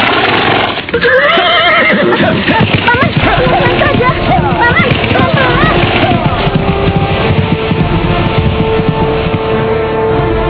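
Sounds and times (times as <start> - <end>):
speech: 0.9 - 2.5
horse neighing: 0.9 - 6.4
steady rumble of noise: 2.1 - 10.4.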